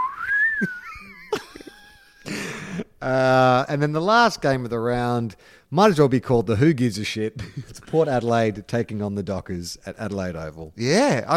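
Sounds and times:
whistled tone sliding downward like a slide whistle: 0:00.0 - 0:00.9
speech: 0:00.6 - 0:00.8, 0:03.0 - 0:11.3.

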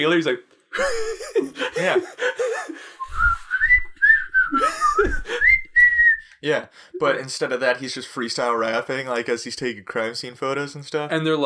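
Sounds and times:
speech: 0:00.0 - 0:03.4, 0:06.4 - 0:11.4
laughter: 0:00.8 - 0:02.9, 0:04.5 - 0:05.5
person whistling a tune: 0:03.0 - 0:06.4
soft low thumps: 0:03.1 - 0:05.8.

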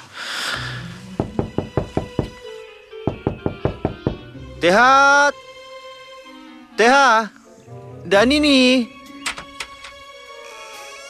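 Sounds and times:
knocking: 0:01.1 - 0:02.4, 0:03.1 - 0:04.4
speech: 0:04.6 - 0:05.4, 0:06.8 - 0:07.4, 0:08.1 - 0:08.9.

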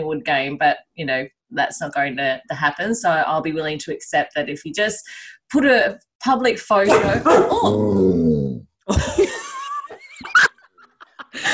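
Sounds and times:
speech: 0:00.0 - 0:09.4
dog yelping at a cat outside a window: 0:06.9 - 0:07.7
laughter: 0:08.9 - 0:11.5.

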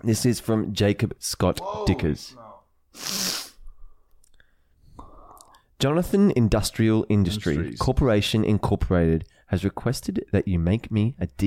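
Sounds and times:
speech: 0:00.0 - 0:03.2, 0:05.8 - 0:11.4
person sneezing: 0:03.0 - 0:03.6
quiet breathing: 0:03.6 - 0:05.8.

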